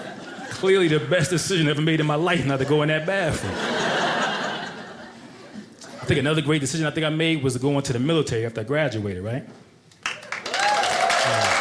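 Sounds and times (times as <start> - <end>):
laughter: 0.0 - 1.3, 2.3 - 6.2
speech: 0.5 - 3.8, 6.1 - 9.6
audience applause: 10.0 - 11.5.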